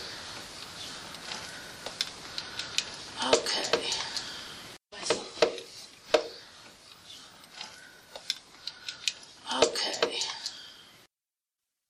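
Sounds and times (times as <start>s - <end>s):
voice clicks: 1.9s - 4.3s, 8.2s - 10.6s.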